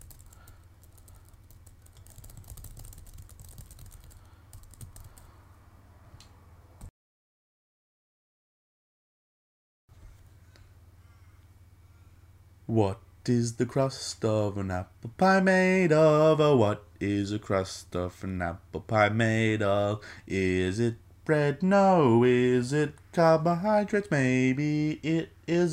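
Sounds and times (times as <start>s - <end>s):
rapid typing on a computer keyboard: 0.0s - 5.3s
speech: 12.7s - 25.7s.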